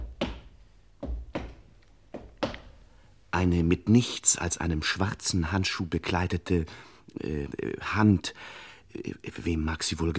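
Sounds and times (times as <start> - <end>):
heavy footsteps approaching a couch: 0.0 - 3.0
speech: 3.4 - 10.1.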